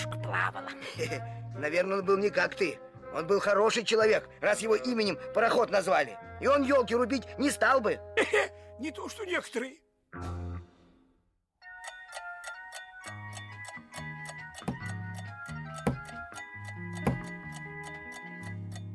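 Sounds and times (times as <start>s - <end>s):
speech: 0.4s - 10.4s
clock chiming a bell-like melody: 11.6s - 18.9s.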